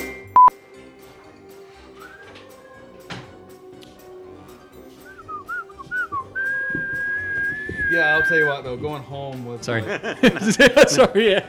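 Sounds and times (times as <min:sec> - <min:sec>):
short sharp beep: 0:00.3 - 0:00.5
high-pitched human whistling: 0:02.0 - 0:02.4, 0:05.0 - 0:08.6
laughter: 0:05.2 - 0:11.4
speech: 0:08.3 - 0:11.4.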